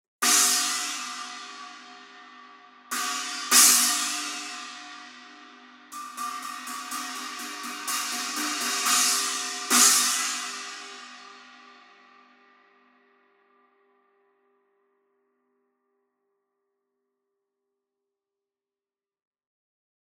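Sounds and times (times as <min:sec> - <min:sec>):
custom 18-inch china cymbal: 0:00.2 - 0:12.8.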